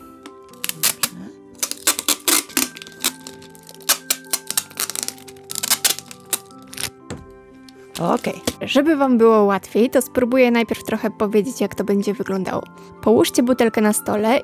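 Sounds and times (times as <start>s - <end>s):
wide sticky tape pulled from the roll in crackly rips: 0.5s - 6.9s
speech: 8.0s - 14.4s.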